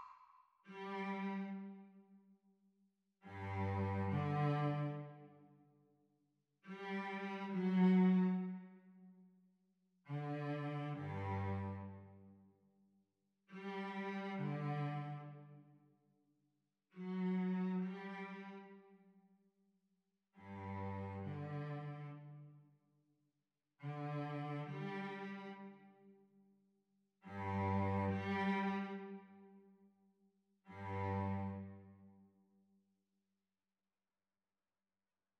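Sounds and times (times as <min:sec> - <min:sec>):
cello duet playalong for practice: 0:00.7 - 0:02.1, 0:03.3 - 0:05.6, 0:06.7 - 0:09.2, 0:10.1 - 0:12.5, 0:13.5 - 0:15.7, 0:16.9 - 0:19.1, 0:20.4 - 0:22.7, 0:23.8 - 0:26.2, 0:27.3 - 0:29.8, 0:30.7 - 0:32.3.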